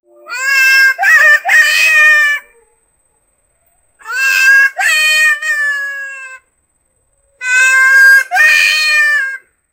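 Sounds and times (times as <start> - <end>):
monkey crying: 0.3 - 2.7, 4.0 - 6.4, 7.4 - 9.5.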